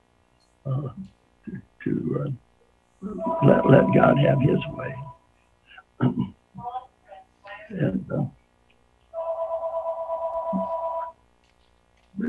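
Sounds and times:
speech: 0.6s - 5.1s, 6.0s - 6.7s, 7.7s - 8.4s
phone ringing with a warbling electronic trill: 3.0s - 5.2s, 9.2s - 11.2s.

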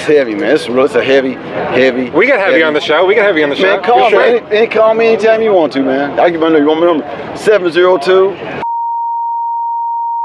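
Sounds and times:
speech: 0.0s - 8.6s
censor bleep over phone number: 8.6s - 10.2s.

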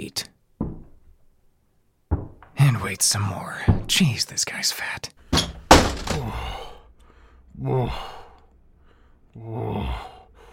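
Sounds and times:
speech: 2.8s - 5.2s, 7.6s - 8.2s, 9.4s - 10.1s
door bursting open with a loud bang: 5.3s - 6.6s.

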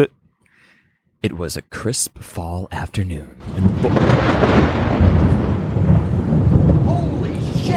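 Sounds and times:
speech: 1.2s - 5.3s
thunder crack from nearby lightning strike: 3.4s - 7.7s.

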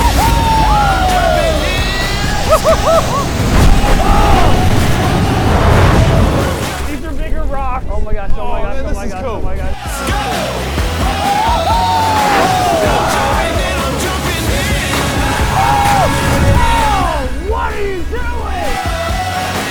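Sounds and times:
laughter: 0.0s - 6.8s, 11.1s - 18.0s
group of boat passengers screaming and yelling: 0.0s - 7.5s, 8.4s - 19.6s
rumbling background: 0.0s - 9.8s, 11.9s - 19.6s.

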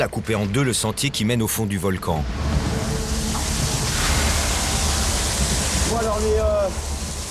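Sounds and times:
speech: 0.0s - 2.5s, 5.9s - 6.9s
heavy rain downpour at a volcano: 2.2s - 7.2s.

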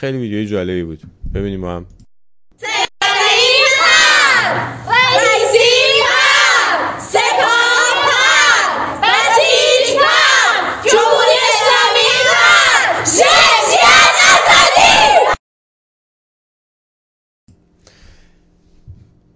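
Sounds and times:
speech: 0.0s - 2.0s
large group of high school students in Iran shouting: 2.6s - 15.4s.

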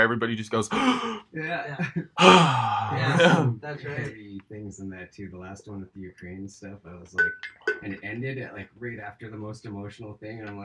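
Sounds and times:
speech: 0.0s - 10.6s
person vocally imitating the gasp of a crowd: 0.7s - 1.2s, 2.2s - 3.5s.

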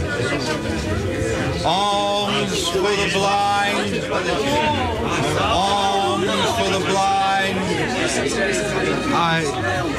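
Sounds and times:
crowd murmuring and chattering: 0.0s - 9.9s
speech: 0.3s - 9.9s.

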